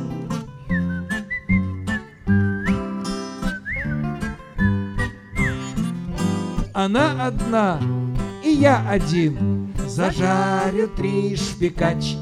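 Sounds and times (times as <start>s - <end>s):
person whistling a lilting tune with sliding notes: 0.6s - 5.9s
speech: 6.8s - 8.0s, 8.6s - 12.2s.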